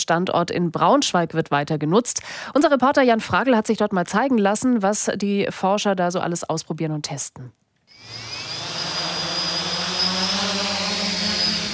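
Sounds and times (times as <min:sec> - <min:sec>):
speech: 0:00.1 - 0:08.3
electric whir of two drones' rotors taking off inside a huge cage: 0:07.9 - 0:11.7.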